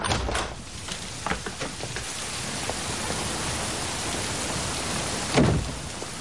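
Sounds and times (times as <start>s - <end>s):
heavy rain: 0.0s - 6.1s
scattered rain drips and splashes: 0.6s - 6.1s.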